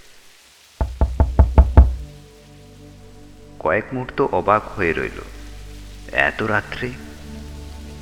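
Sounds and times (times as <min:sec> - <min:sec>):
knocking on a door at night: 0:00.8 - 0:02.1
speech: 0:03.6 - 0:05.4, 0:06.1 - 0:07.1.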